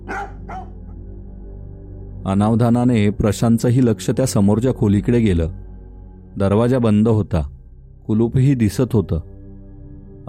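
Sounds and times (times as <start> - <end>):
dog barking in a lane: 0.0 - 0.9
speech: 2.2 - 5.6, 6.4 - 7.5, 8.1 - 9.3.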